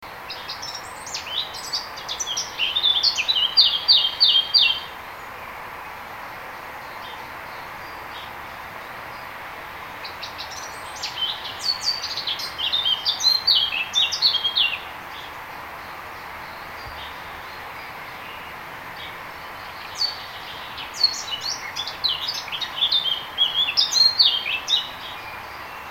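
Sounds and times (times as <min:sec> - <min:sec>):
Sylvia atricapilla blackcap singing in a hedge: 0:00.4 - 0:04.9, 0:10.2 - 0:14.8, 0:19.7 - 0:25.8.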